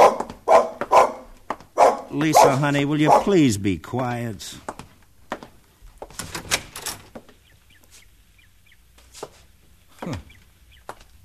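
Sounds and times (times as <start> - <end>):
dog barking: 0.0 - 3.4
speech: 2.2 - 4.7.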